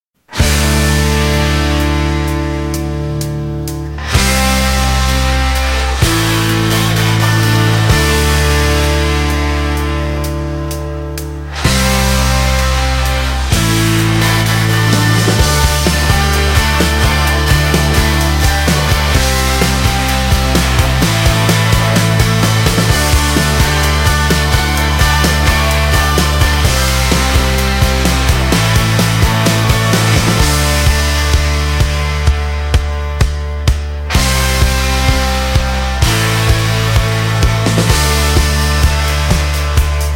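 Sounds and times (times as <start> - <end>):
epic rock music: 0.2 - 40.1.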